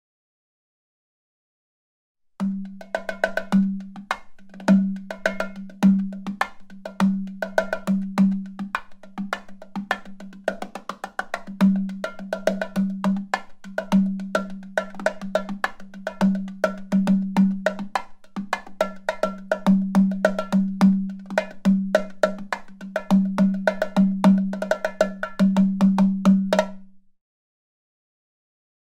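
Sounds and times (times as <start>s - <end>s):
mini djembe: 2.4s - 27.0s.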